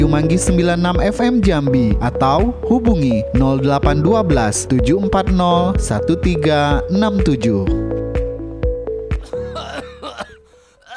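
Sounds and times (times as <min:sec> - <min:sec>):
speech: 0:00.1 - 0:07.9
person coughing harshly and hacking: 0:09.3 - 0:10.9.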